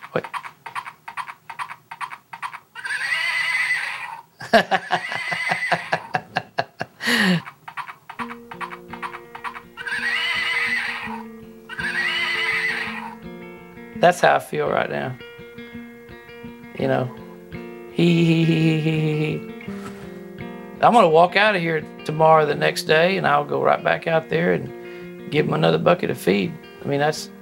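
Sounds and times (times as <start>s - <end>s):
little toy horse neighing: 0.0s - 6.2s, 7.4s - 13.2s
laughter: 4.4s - 7.5s
speech: 4.5s - 5.1s, 14.0s - 15.3s, 16.8s - 17.2s, 18.0s - 19.5s, 20.8s - 27.3s.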